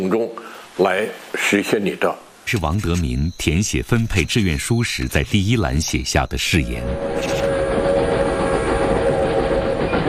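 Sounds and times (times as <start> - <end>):
speech: 0.0 - 7.5
train rumbling on rails: 3.9 - 10.0.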